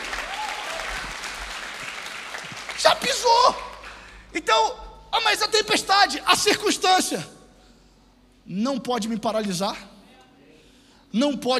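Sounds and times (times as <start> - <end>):
church congregation clapping during a sermon: 0.0 - 4.4
speech: 2.8 - 3.7, 4.3 - 7.3, 8.5 - 9.9, 11.1 - 11.5.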